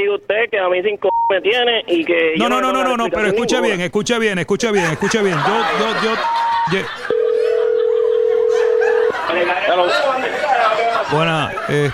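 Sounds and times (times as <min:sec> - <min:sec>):
speech: 0:00.1 - 0:07.0, 0:09.3 - 0:11.9
laughter: 0:04.6 - 0:11.9
steady telephone tone after a call is hung up: 0:06.2 - 0:09.2.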